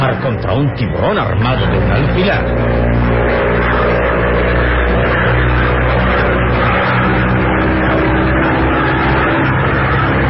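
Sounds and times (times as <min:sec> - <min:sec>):
speech: 0:00.0 - 0:03.4
small plane engine droning: 0:00.0 - 0:10.2.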